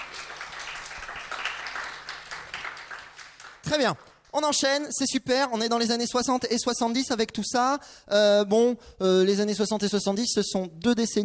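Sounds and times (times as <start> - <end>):
audience applause: 0.0 - 4.0
speech: 3.7 - 11.2.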